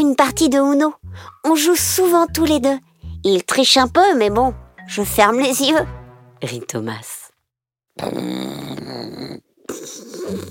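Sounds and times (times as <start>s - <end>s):
speech: 0.0s - 7.2s, 8.0s - 9.4s
wolf snoring loudly: 8.0s - 10.4s.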